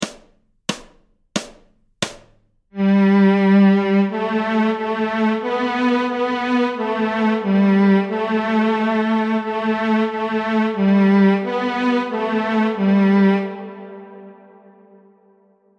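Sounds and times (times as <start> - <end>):
fiddle bowing on the G string: 2.8 - 14.6.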